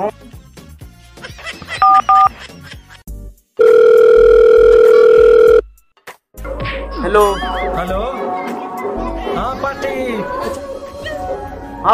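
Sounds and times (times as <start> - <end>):
speech: 0.0 - 0.3, 7.1 - 8.2
telephone keypad tones: 1.8 - 2.3, 3.6 - 5.6.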